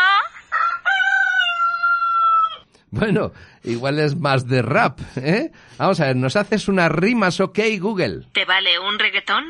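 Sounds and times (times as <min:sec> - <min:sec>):
rooster crowing: 0:00.5 - 0:02.7
speech: 0:02.9 - 0:09.4.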